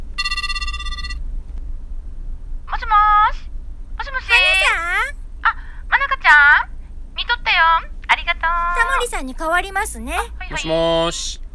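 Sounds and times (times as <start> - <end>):
low hum: 0.0 - 11.5
telephone ringing as a call is placed: 0.2 - 1.2
speech: 9.2 - 11.4.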